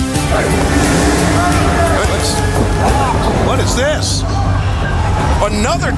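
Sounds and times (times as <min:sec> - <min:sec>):
truck pulling up with heavy low engine rumble: 0:00.2 - 0:04.4
high whining tones: 0:00.3 - 0:03.8
speech: 0:03.7 - 0:04.4, 0:05.4 - 0:05.9.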